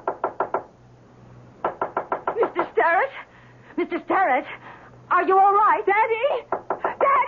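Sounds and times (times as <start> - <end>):
knocking on a wooden door: 0.0 - 0.7, 1.6 - 2.7, 6.5 - 7.0
faint low hum: 0.0 - 7.2
speech: 3.8 - 6.5.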